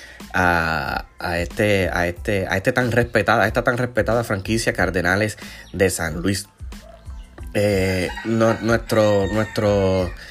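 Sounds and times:
speech: 0.3s - 6.6s, 7.6s - 10.3s
rooster crowing: 7.8s - 10.3s.

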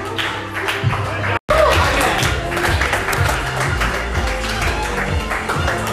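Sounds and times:
audience clapping and applause: 0.1s - 5.8s
scattered voices and cheering in a crowd: 1.2s - 2.6s.

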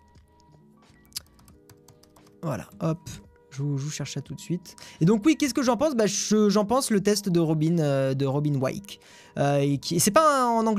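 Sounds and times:
typing on a computer keyboard: 0.1s - 3.2s
speech: 2.4s - 10.7s.

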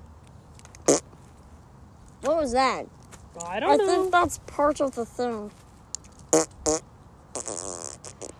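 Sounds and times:
fart noises from an appliance: 0.8s - 1.1s, 6.3s - 8.3s
speech: 2.4s - 5.6s.

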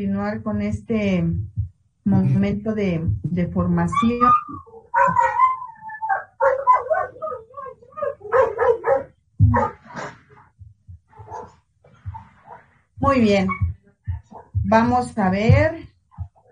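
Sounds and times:
speech: 0.0s - 5.4s, 13.0s - 13.6s, 14.7s - 15.8s
small dog whimpering: 3.9s - 9.8s, 13.4s - 14.5s
small dog barking in short bursts: 4.2s - 5.6s, 6.2s - 7.4s, 8.0s - 9.9s, 11.1s - 12.6s, 13.5s - 14.6s.

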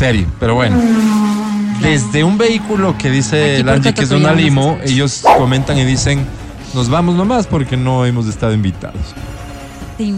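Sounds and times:
speech: 0.0s - 1.2s, 1.8s - 9.4s, 10.0s - 10.1s
voice imitating a race car engine: 0.5s - 5.8s.

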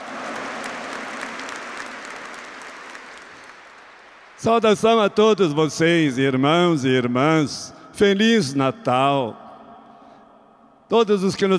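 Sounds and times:
audience applauding: 0.0s - 4.7s
speech: 4.4s - 9.4s, 10.9s - 11.5s.

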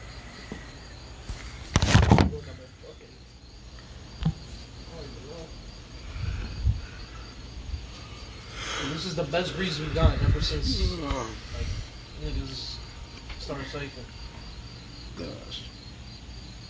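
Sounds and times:
chorus of crickets chirping outdoors among trees in New York: 0.0s - 16.6s
speech: 9.2s - 12.8s, 13.5s - 14.2s, 15.2s - 15.7s.

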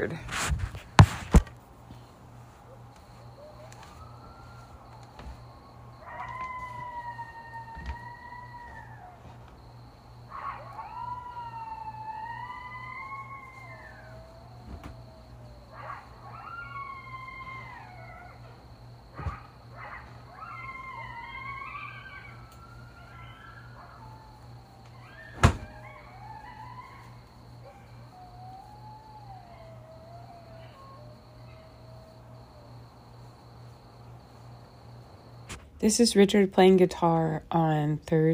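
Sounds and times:
speech: 0.0s - 0.6s, 35.8s - 38.3s
several coyotes howling: 2.0s - 36.0s.

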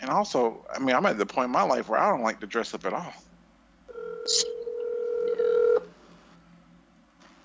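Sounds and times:
speech: 0.0s - 3.3s, 4.2s - 4.5s
ringback tone of an outgoing phone call: 3.9s - 5.9s.

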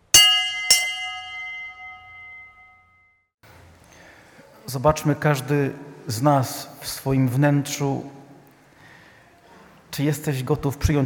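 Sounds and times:
church bell ringing: 0.0s - 3.1s
speech: 4.7s - 8.2s, 10.0s - 11.0s.

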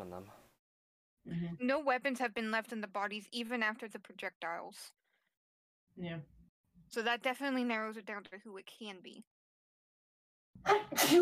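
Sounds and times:
speech: 0.1s - 0.5s, 1.2s - 5.0s, 6.0s - 9.3s, 10.6s - 11.2s
person sneezing: 10.7s - 11.2s.

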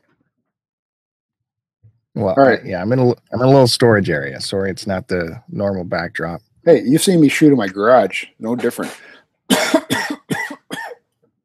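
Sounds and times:
speech: 2.2s - 9.7s
harsh coughs: 8.6s - 11.0s.

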